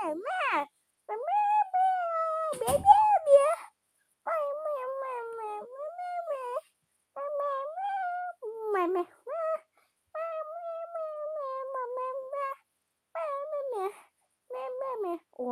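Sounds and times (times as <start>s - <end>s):
person singing a cat song imitating cat meows: 0.0s - 3.7s, 4.3s - 6.6s, 7.2s - 12.6s, 14.5s - 15.4s
speech: 2.5s - 3.4s.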